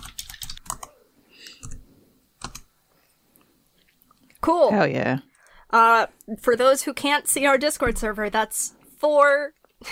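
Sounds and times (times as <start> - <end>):
typing on a computer keyboard: 0.0 - 1.8, 2.4 - 2.7
speech: 4.4 - 9.9.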